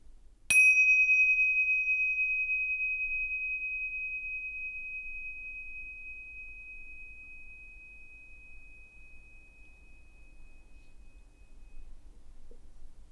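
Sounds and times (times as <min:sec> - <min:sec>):
meditation bell ringing: 0:00.5 - 0:12.0.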